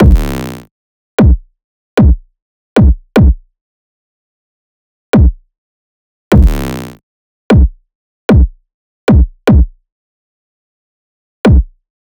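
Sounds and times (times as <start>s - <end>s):
kick drum loop: 0.0s - 0.4s, 1.2s - 1.4s, 2.0s - 2.2s, 2.8s - 3.4s, 5.2s - 5.4s, 6.3s - 6.7s, 7.5s - 9.7s, 11.5s - 11.7s.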